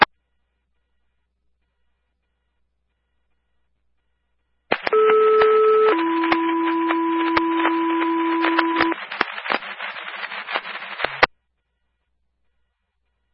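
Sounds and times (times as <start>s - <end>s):
radio static: 4.7s - 11.3s
two-tone radio dispatch page for ambulance personnel: 4.7s - 11.3s.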